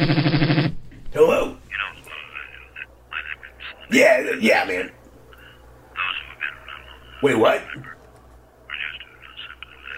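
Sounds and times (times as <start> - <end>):
faint hum: 0.0 - 9.9
tinny garbled sped-up voice chattering over a telephone line: 1.7 - 4.4, 6.0 - 8.0, 8.7 - 9.9
speech: 3.9 - 5.0, 7.2 - 7.9.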